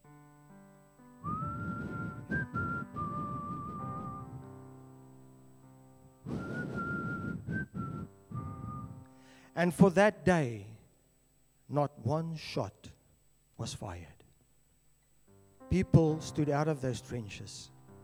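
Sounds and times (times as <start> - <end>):
person whistling a short melodic tune: 1.2 - 4.6, 6.3 - 9.1
speech: 9.6 - 10.7, 11.7 - 13.0, 13.6 - 14.2, 15.7 - 17.7.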